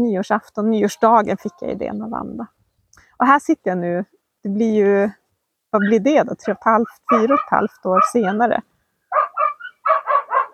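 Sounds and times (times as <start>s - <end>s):
speech: 0.0s - 2.6s, 3.2s - 9.2s
dog barking: 5.8s - 8.5s, 9.1s - 10.5s.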